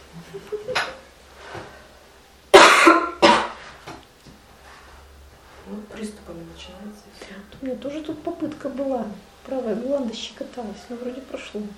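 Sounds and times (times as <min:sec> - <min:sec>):
speech: 0:00.2 - 0:00.8, 0:05.8 - 0:11.7
faint brief cough and loud harsh coughs: 0:02.6 - 0:03.6.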